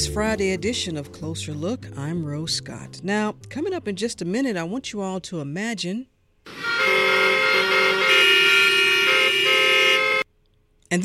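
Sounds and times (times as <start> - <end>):
speech: 0.0 - 7.2
car horns honking in city traffic jam: 6.5 - 10.3.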